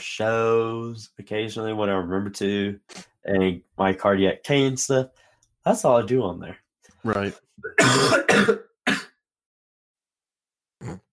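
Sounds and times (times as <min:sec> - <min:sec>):
speech: 0:00.0 - 0:09.0
short rough coughs: 0:07.6 - 0:09.2.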